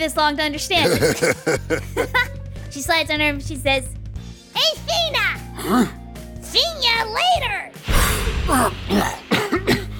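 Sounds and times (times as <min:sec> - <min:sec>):
speech: 0:00.0 - 0:04.0, 0:04.6 - 0:07.7, 0:08.5 - 0:09.3
person imitating coughing: 0:00.8 - 0:01.8, 0:05.6 - 0:06.0, 0:08.5 - 0:09.9
laughter: 0:00.8 - 0:02.3
throat clearing: 0:05.6 - 0:06.0, 0:08.5 - 0:09.9.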